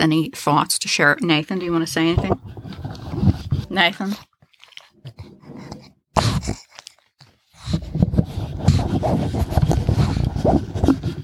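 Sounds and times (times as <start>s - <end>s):
speech: 0.0s - 2.9s, 3.7s - 4.3s, 8.6s - 9.8s, 10.4s - 11.2s
dog snuffling and grunting: 1.7s - 11.2s
dog snorting: 2.3s - 11.2s.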